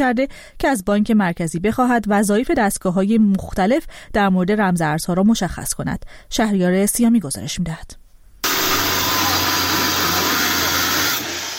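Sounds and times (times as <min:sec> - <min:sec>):
speech: 0:00.0 - 0:08.0
chainsaw cutting to break into an illegal Bitcoin mining site in Iran: 0:08.4 - 0:11.5.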